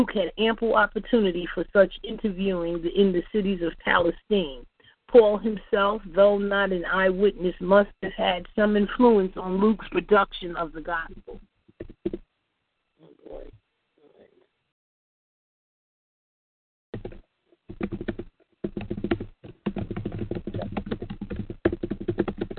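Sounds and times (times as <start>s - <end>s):
speech: 0.0s - 12.2s
keyboard typing on a call: 11.1s - 12.2s, 17.0s - 22.5s.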